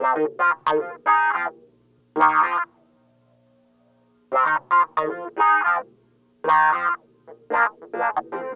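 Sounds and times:
raw funk clavinet: 0:00.0 - 0:01.6, 0:02.2 - 0:02.7, 0:04.3 - 0:05.8, 0:06.4 - 0:08.5.

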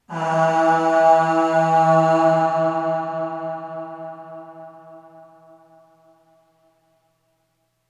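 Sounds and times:
short aah voice on E2 with long reverb: 0:00.0 - 0:05.5.

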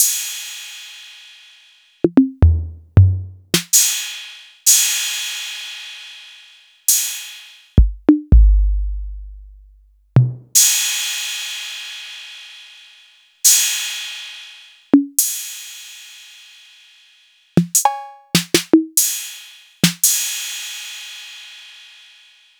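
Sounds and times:
TR-808 drum machine hits: 0:02.1 - 0:04.0, 0:07.8 - 0:08.8, 0:17.6 - 0:19.2, 0:19.8 - 0:20.2.

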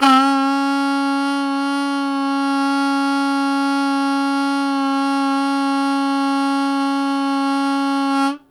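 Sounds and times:
harmonica note C sharp 2 with loud attack and sustain: 0:00.0 - 0:08.4.

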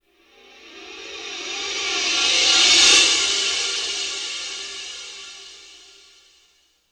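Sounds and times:
cymbal: 0:00.1 - 0:06.6.

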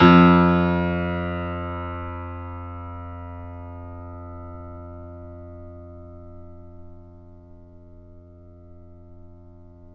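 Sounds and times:
grand piano note F2 played mezzo-forte off mic: 0:00.0 - 0:05.4.

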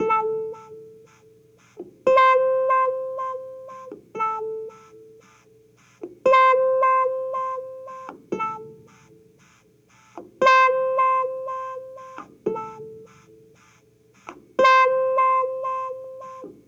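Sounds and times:
70s analog funk disco clavinet music: 0:00.0 - 0:16.6.

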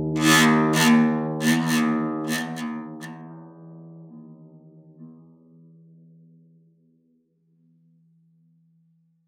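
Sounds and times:
harp: 0:00.2 - 0:03.4.

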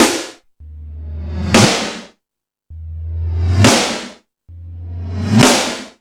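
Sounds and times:
hip house beat on E-MU Pro-Cussion-1 drum machine: 0:00.6 - 0:02.0, 0:02.7 - 0:05.8.

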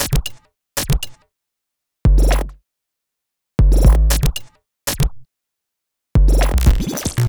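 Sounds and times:
percussive bass: 0:02.1 - 0:02.6, 0:03.6 - 0:04.4, 0:06.2 - 0:07.2.

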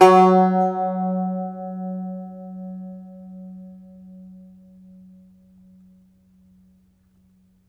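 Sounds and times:
plucked Irish bouzouki: 0:00.0 - 0:03.6.

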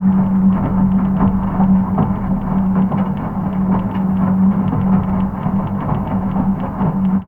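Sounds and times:
washing machine mechanical noise through a contact mic: 0:00.0 - 0:07.2.

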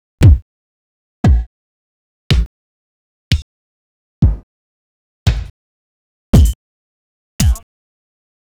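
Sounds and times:
vinyl bass drum: 0:00.2 - 0:00.4, 0:01.3 - 0:01.5, 0:04.2 - 0:04.4, 0:05.3 - 0:05.5, 0:06.4 - 0:06.6, 0:07.4 - 0:07.6
vinyl snare drum: 0:06.4 - 0:06.6, 0:07.4 - 0:07.6.

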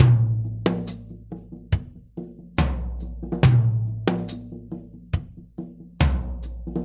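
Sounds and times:
laid back drum loop: 0:00.0 - 0:06.8.

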